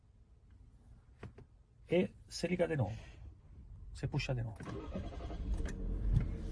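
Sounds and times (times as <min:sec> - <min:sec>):
speech: 0:01.9 - 0:03.1, 0:04.0 - 0:05.2
car engine starting and settling into idle: 0:04.6 - 0:06.5.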